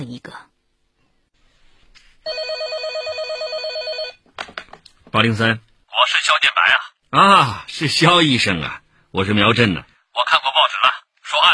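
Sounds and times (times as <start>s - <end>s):
speech: 0.0s - 0.5s, 5.1s - 11.5s
telephone bell ringing at a police criminal investigation unit: 2.3s - 4.2s.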